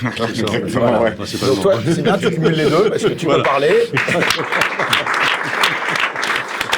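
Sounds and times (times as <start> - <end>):
speech: 0.0 - 5.2
laughter: 0.0 - 6.7
murmuring voices: 0.0 - 6.7
audience applauding: 3.3 - 6.7.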